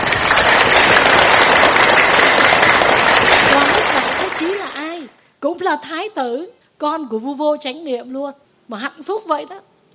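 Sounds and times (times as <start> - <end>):
large audience applauding at a Buddhist dharma talk: 0.0 - 5.0
speech: 5.7 - 9.7.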